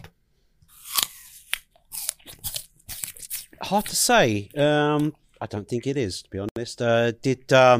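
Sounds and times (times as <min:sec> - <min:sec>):
someone biting into and chewing an older apple: 0:00.7 - 0:05.1
speech: 0:03.7 - 0:07.7.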